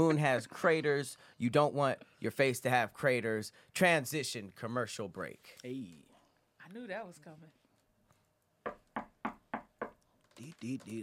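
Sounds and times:
speech: 0.0s - 6.1s, 6.7s - 7.6s, 10.4s - 11.0s
sharp knocks on a door: 8.6s - 10.0s.

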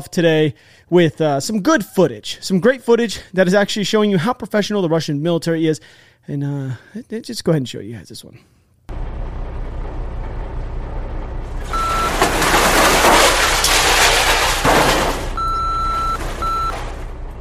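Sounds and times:
speech: 0.0s - 8.5s
Russian military truck loaded with mines reversing with engine rumble: 8.9s - 17.3s
military truck backup alarm beeping: 11.6s - 12.2s, 15.3s - 17.0s.

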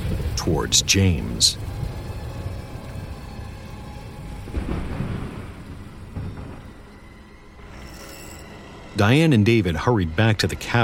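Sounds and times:
thunder rumbling from a lightning strike: 0.0s - 7.7s
steady rain hissing: 0.0s - 7.8s
speech: 0.4s - 1.7s, 9.0s - 10.8s.

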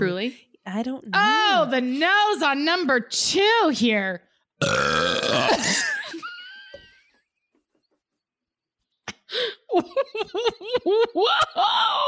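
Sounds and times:
speech: 0.0s - 6.3s, 9.3s - 12.0s
loud drawn-out raspy burp: 4.6s - 5.8s.

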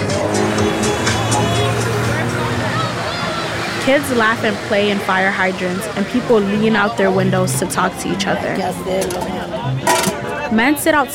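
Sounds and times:
car rolling past: 0.0s - 8.9s
loud music with heavy rumbling bass pumping from a car: 0.0s - 10.5s
speech: 3.9s - 11.1s.

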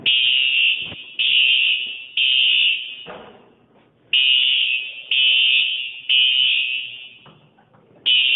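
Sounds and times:
smoke detector alarm beeping: 0.0s - 3.1s, 4.1s - 7.4s, 8.1s - 8.3s.

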